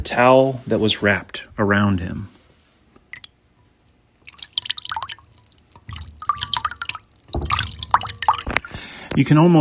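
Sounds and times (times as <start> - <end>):
speech: 0.0 - 2.4, 9.2 - 9.5
water splashing and sloshing in a basin: 3.0 - 8.8.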